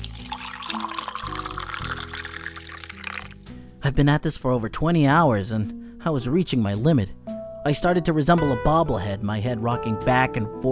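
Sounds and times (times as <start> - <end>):
coffee being poured into a cup: 0.0 - 3.5
speech: 3.8 - 10.7.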